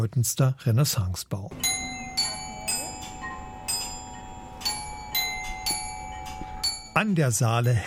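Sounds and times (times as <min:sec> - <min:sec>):
speech: 0:00.0 - 0:01.8, 0:07.0 - 0:07.8
town hall carillon chiming: 0:01.6 - 0:07.8.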